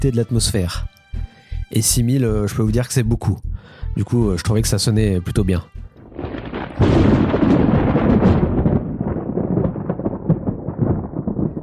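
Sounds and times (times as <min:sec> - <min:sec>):
speech: 0:00.0 - 0:00.9, 0:01.7 - 0:05.8
loud thunderclap and crackling rumble from a thunderstorm: 0:05.9 - 0:11.6.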